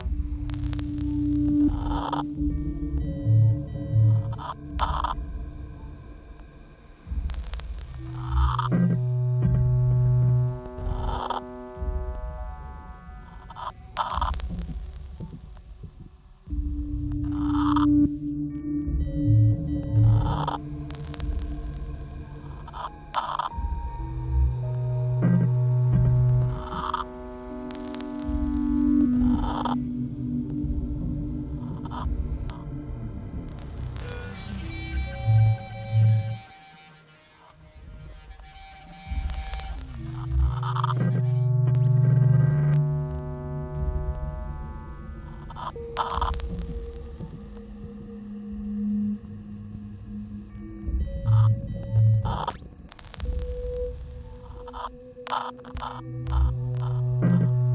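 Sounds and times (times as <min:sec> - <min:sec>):
radiator: 0:00.0 - 0:57.7.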